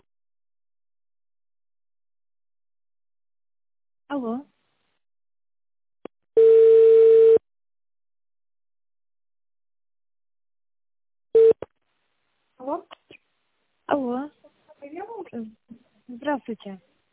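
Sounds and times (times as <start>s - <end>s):
electronic telephone tones during a call transfer: 6.4s - 7.4s, 11.4s - 11.6s
speech: 16.3s - 16.9s.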